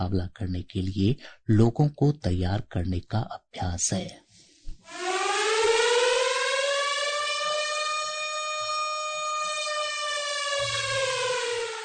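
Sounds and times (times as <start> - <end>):
speech: 0.0 - 4.2
civil defence air raid siren wailing for blackout mock drill in Patna: 4.8 - 11.8.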